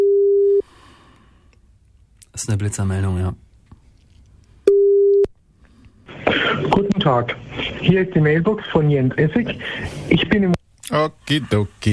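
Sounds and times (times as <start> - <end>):
telephone ringback tone on an outgoing call: 0.0 - 0.6, 4.7 - 5.3
speech: 2.4 - 3.4, 6.6 - 11.9.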